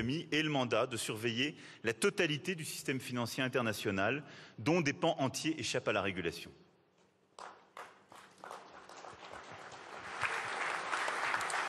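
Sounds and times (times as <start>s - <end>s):
speech: 0.0s - 6.6s
audience applause after a speech: 7.8s - 11.6s.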